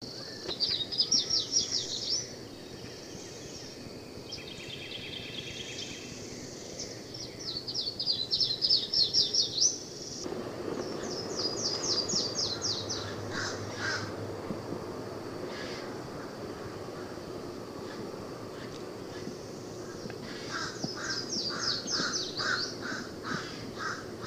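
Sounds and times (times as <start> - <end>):
Yellow-throated warbler singing rapid high descending slurred whistles: 0.0 - 14.2, 17.8 - 23.0
background hiss: 0.0 - 24.2.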